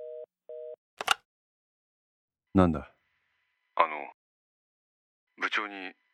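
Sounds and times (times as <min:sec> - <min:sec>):
telephone receiver clatter as it is picked up: 0:01.0 - 0:01.2
speech: 0:02.6 - 0:02.9.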